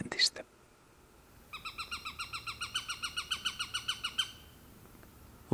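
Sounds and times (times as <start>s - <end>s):
Eurasian sparrowhawk chattering kek calls: 1.4s - 4.8s.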